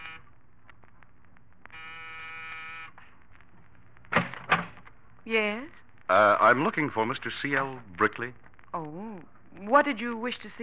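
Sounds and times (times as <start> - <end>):
apartment door buzzer in a New York apartment building buzzing: 1.8 - 2.9
speech: 5.3 - 9.0, 9.6 - 10.6.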